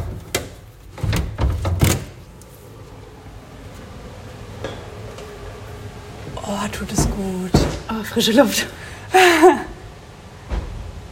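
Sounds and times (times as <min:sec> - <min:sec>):
door opening: 0:00.0 - 0:08.0, 0:10.4 - 0:11.1
low hum: 0:00.0 - 0:11.1
speech: 0:06.5 - 0:09.7.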